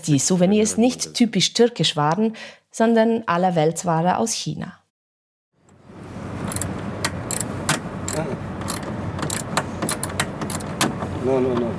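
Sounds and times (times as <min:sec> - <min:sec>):
speech: 0:00.0 - 0:04.8, 0:11.3 - 0:11.7
steady hum: 0:05.6 - 0:11.7
metallic clicks of a customs officer unscrewing screws holding coach bus stairs: 0:06.5 - 0:10.7.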